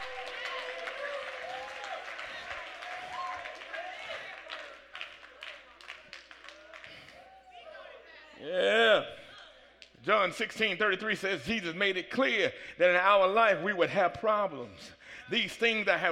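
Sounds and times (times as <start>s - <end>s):
audience applauding: 0.0s - 7.5s
speech: 10.2s - 16.1s.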